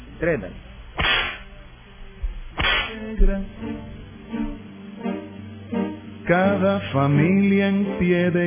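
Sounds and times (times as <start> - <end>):
speech: 0.2 - 0.7, 3.0 - 4.6, 5.7 - 8.4
whip crack: 1.0 - 1.5, 2.6 - 3.0.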